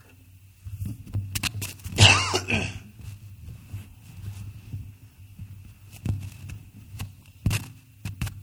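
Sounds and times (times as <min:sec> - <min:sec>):
low steady hum: 0:00.0 - 0:08.4
cough and throat clearing away from microphone: 0:02.0 - 0:02.9.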